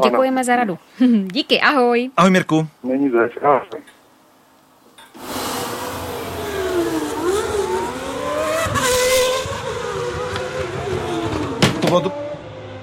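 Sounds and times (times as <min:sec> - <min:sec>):
speech: 0:00.0 - 0:03.9, 0:11.9 - 0:12.2
Formula 1 race car engines whining at the Spanish Grand Prix: 0:05.2 - 0:12.8.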